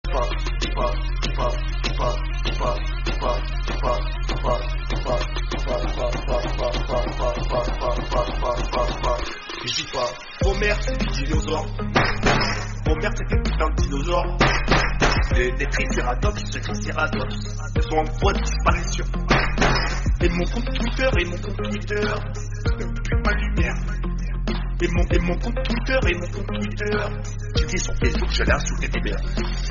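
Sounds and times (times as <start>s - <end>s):
music: 0.0s - 29.7s.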